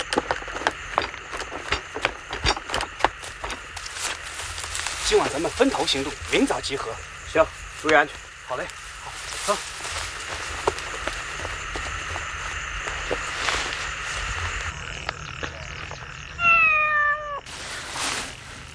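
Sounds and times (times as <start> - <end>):
faint night-time insect or frog chirping: 0.0 - 18.7
speech: 5.1 - 8.8, 9.5 - 9.7
cat meowing: 16.4 - 17.5.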